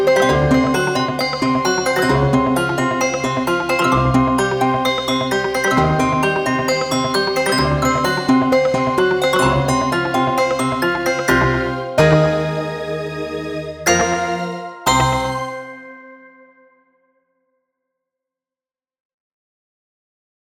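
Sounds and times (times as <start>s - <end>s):
Nonlinear Labs C15 synthesizer bell tone: 0.1s - 12.8s, 13.9s - 16.7s.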